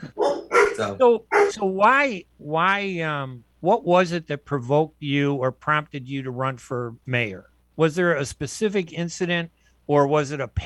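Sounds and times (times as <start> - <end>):
pet dog barking in high-pitched yaps: 0.1 - 1.6
speech: 0.8 - 10.6.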